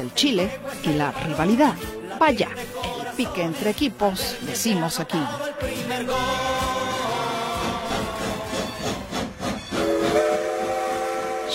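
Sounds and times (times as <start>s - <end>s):
speech: 0.0s - 6.7s
steam train chugging: 6.8s - 11.5s
steam whistle: 9.7s - 11.5s.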